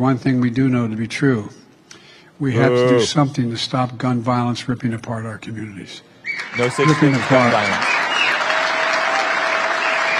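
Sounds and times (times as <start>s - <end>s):
speech: 0.0s - 1.6s, 2.4s - 8.0s
crowd applauding at a political speech: 6.3s - 10.1s.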